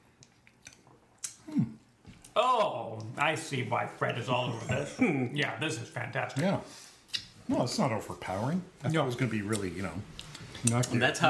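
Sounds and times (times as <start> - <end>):
soft wet mouth clicks: 0.5 - 2.4, 7.1 - 7.3
speech: 2.4 - 6.8, 7.5 - 11.2.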